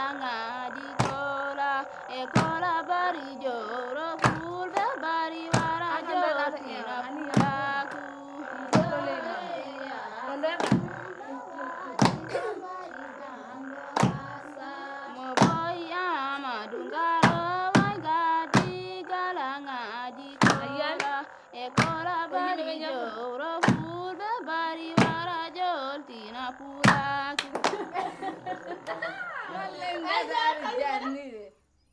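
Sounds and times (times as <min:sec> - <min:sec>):
person singing a song from Mali: 0:00.0 - 0:29.7
sharp percussive knocks: 0:01.0 - 0:01.3, 0:02.3 - 0:02.8, 0:04.2 - 0:04.9, 0:05.6 - 0:06.0, 0:07.3 - 0:07.8, 0:08.7 - 0:09.1, 0:10.6 - 0:11.2, 0:12.0 - 0:12.4, 0:14.0 - 0:14.4, 0:15.4 - 0:15.8, 0:17.2 - 0:18.9, 0:20.4 - 0:21.1, 0:21.8 - 0:22.1, 0:23.6 - 0:24.0, 0:25.0 - 0:25.3, 0:26.8 - 0:27.6
laughter: 0:05.7 - 0:16.4, 0:27.2 - 0:31.5.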